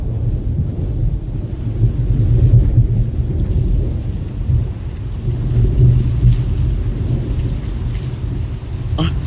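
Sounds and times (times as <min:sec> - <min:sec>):
deep rolling rumbles of thunder: 0:00.0 - 0:09.2
heavy rain pouring down: 0:00.0 - 0:09.2.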